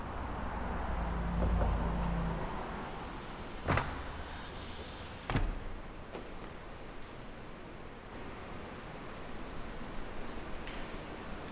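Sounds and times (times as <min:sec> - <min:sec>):
steady city traffic rumble: 0:00.0 - 0:11.5
sliding doors closing with clunks and thud: 0:01.4 - 0:06.8.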